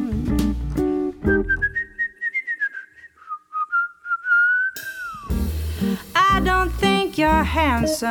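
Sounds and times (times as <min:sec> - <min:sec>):
instrumental music: 0:00.0 - 0:02.0, 0:04.8 - 0:08.0
person whistling a tune: 0:01.2 - 0:05.4
speech: 0:07.4 - 0:08.0.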